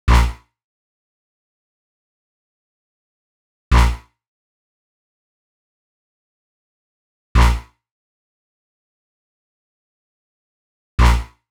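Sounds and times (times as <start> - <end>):
electronic bass line in E minor: 0.1 - 0.4, 7.4 - 7.6, 11.0 - 11.3.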